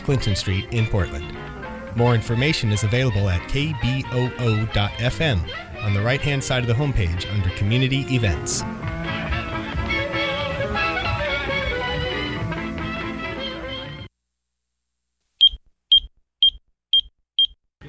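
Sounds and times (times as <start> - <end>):
speech: 0.0 - 9.3
dense music: 0.0 - 13.4
short high-pitched electronic beeps: 17.4 - 17.8.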